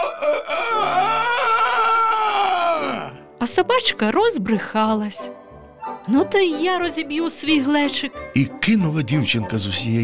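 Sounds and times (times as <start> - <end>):
rooster crowing: 0.0 - 3.1
speech: 3.4 - 5.4, 6.0 - 10.0.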